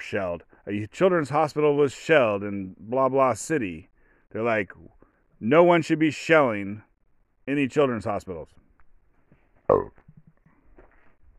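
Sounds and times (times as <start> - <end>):
speech: 0.1 - 6.9, 7.5 - 8.6, 9.7 - 10.0
breaths close to the microphone: 0.4 - 0.7, 3.9 - 4.4, 5.0 - 5.4
loud low burp: 9.7 - 10.1
soft faint vocal murmurs: 9.7 - 10.2.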